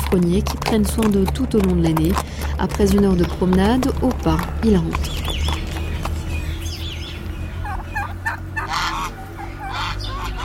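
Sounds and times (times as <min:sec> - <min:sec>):
steady low rumble of noise: 0:00.0 - 0:10.4
speech: 0:00.1 - 0:05.4
turkeys gobbling in the backyard of a traditional house: 0:02.2 - 0:10.4
geese honking in the backyard of a traditional house: 0:03.1 - 0:10.4.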